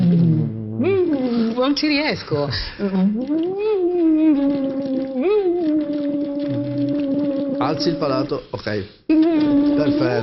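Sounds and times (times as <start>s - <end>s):
person humming through a tube in water during voice exercise: 0.0s - 1.6s, 2.8s - 8.3s, 9.1s - 10.2s
bubbles blown through a tube into water during voice exercise: 0.0s - 8.5s, 9.1s - 10.2s
speech: 1.6s - 4.7s, 7.7s - 10.2s.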